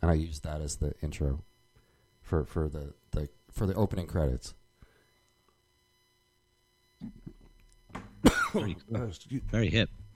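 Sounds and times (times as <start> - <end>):
speech: 0.0 - 1.5, 2.3 - 4.6, 8.2 - 10.0
person coughing while choking on a drink: 8.2 - 8.8.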